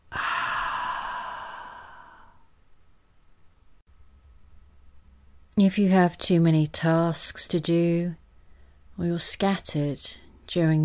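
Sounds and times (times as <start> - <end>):
deep breathy exhale during a breathing exercise: 0.1 - 2.5
speech: 5.6 - 8.2, 9.0 - 10.8.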